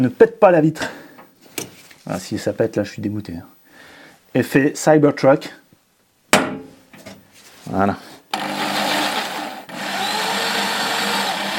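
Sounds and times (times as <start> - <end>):
speech: 0.0 - 1.0, 2.1 - 3.5, 4.3 - 5.6, 7.7 - 8.1
power drill whirring with its bit in the work: 8.3 - 11.5.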